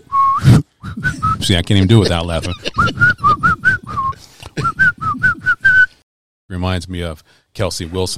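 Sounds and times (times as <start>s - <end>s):
person whistling a song's melody: 0.0s - 1.5s, 2.8s - 6.0s
laughter: 1.1s - 5.2s
speech: 1.4s - 3.5s, 6.6s - 8.1s.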